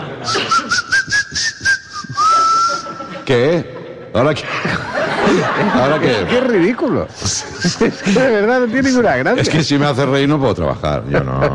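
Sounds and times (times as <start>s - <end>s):
laughter: 0.0s - 0.9s, 2.0s - 9.6s, 10.8s - 11.5s
whistling through the teeth: 0.2s - 3.0s
speech: 3.3s - 11.5s.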